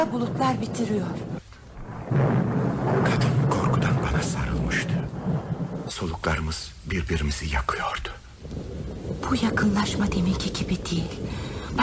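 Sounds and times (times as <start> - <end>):
speech: 0.0 - 1.4, 2.1 - 2.4, 5.9 - 11.8
deep rolling thunder during a rainstorm over Ortaköy: 0.0 - 11.8.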